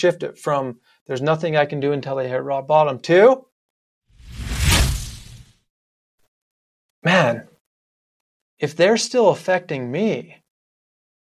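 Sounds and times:
speech: 0.0s - 3.5s, 7.0s - 7.5s, 8.6s - 10.4s
smooth swoosh transition sound effect: 4.2s - 5.5s.

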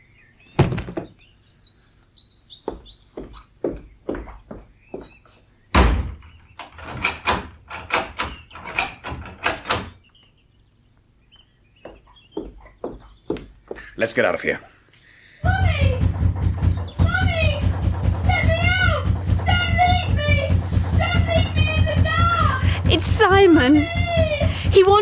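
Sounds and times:
faint birdsong: 0.0s - 25.0s
cellar door creaking and rattling open: 0.6s - 1.2s, 5.7s - 10.0s, 15.4s - 25.0s
speech: 14.0s - 14.7s, 23.5s - 24.0s
heavy bang of cellar door: 15.4s - 25.0s.

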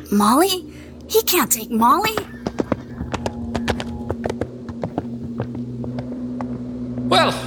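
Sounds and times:
steady low hum: 0.0s - 7.4s
speech: 0.1s - 2.3s
hooves of a horse laden with beaver pelts clip-clopping as it is ridden away: 2.0s - 7.1s.

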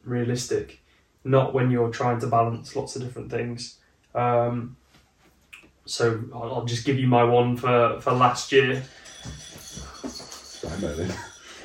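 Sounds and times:
speech: 0.1s - 4.8s, 5.9s - 9.9s, 10.8s - 11.3s
soft bumps of automatic cat feeder: 9.1s - 11.3s.

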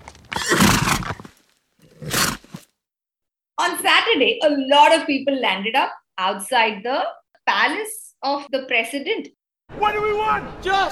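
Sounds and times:
horse neighing: 0.3s - 1.2s
speech: 3.6s - 10.8s.

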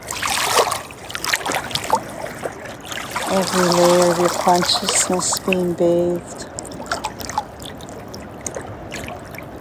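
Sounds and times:
fresh water trickling and bubbling: 0.0s - 9.5s
small water waves lapping: 0.0s - 9.5s
speech: 3.3s - 6.4s.

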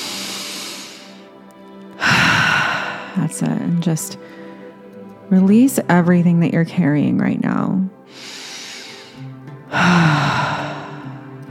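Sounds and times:
slow conscious breathing in through the nose and out through the mouth during a guided relaxation exercise: 0.0s - 3.6s, 4.2s - 5.0s, 8.1s - 11.4s
speech: 3.2s - 4.4s, 5.3s - 8.4s, 9.7s - 10.5s.

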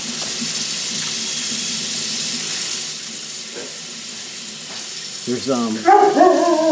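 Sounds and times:
tap water running into a sink while rinsing: 0.0s - 6.7s
speech: 5.3s - 6.7s
dog barking: 5.8s - 6.7s.

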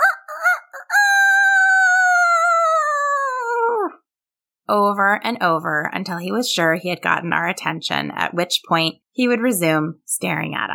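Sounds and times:
pet rooster crowing on its perch outside a kitchen window in the morning: 0.0s - 3.5s
speech: 4.9s - 10.7s.

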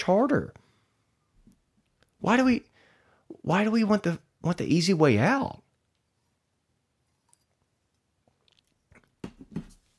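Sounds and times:
speech: 0.0s - 0.6s, 2.2s - 2.7s, 3.3s - 5.6s
person sipping wine: 8.2s - 9.2s.

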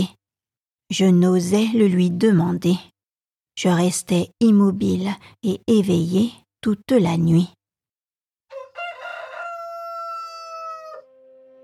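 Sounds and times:
speech: 0.9s - 2.9s, 3.6s - 7.6s
rooster crowing at daybreak: 8.5s - 11.6s.

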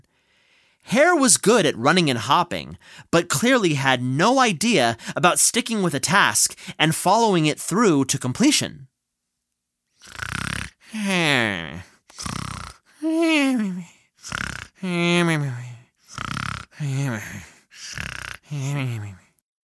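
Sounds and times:
speech: 0.8s - 8.9s
voice imitating snoring of a sleeping hare: 10.0s - 19.4s.

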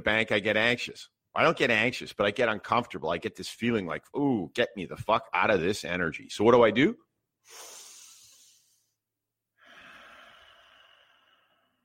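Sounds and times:
speech: 0.0s - 7.7s
deep nasal breath in and out: 7.4s - 9.0s, 9.6s - 11.8s.

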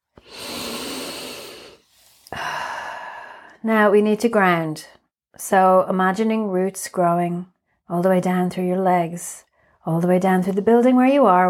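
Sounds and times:
long deep inhale: 0.2s - 3.6s
strong breathy exhale: 0.2s - 3.6s
speech: 3.6s - 11.4s.

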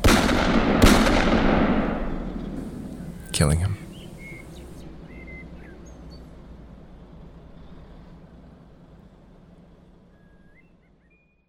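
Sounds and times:
gunshots in a film scene: 0.0s - 3.0s
speech: 3.4s - 3.8s.

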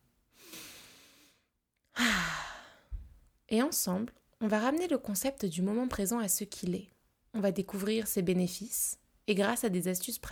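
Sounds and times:
long deep inhalation: 0.4s - 3.0s
speech: 3.5s - 10.3s.

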